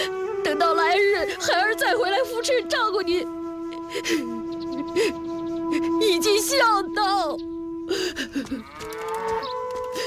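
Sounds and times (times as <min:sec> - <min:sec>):
speech: 0:00.4 - 0:10.0
large yellow ox tied to a wooden post mooing: 0:08.6 - 0:09.9.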